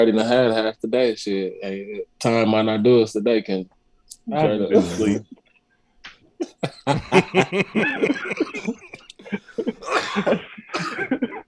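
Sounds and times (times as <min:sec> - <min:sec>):
speech: 0:00.0 - 0:05.4, 0:06.4 - 0:11.4
snickering chuckles: 0:06.4 - 0:11.4
throat clearing: 0:07.0 - 0:07.3, 0:09.8 - 0:11.2
person coughing harshly: 0:07.0 - 0:07.5, 0:08.5 - 0:11.4.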